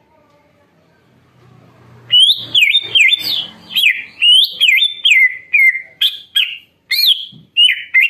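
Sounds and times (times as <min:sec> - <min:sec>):
greater green leafbird song of looping whistled phrases with clicks: 0:02.1 - 0:08.0.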